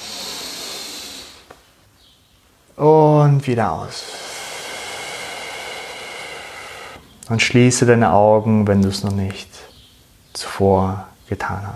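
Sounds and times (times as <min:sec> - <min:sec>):
deep breath drawn in through the nose: 0:00.0 - 0:01.6, 0:04.0 - 0:07.1
speech: 0:02.8 - 0:04.2, 0:07.3 - 0:09.7, 0:10.4 - 0:11.7.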